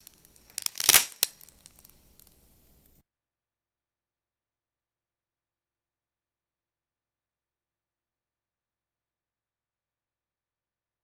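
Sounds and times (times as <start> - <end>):
dry wooden sticks snapping and breaking: 0.0 - 3.0.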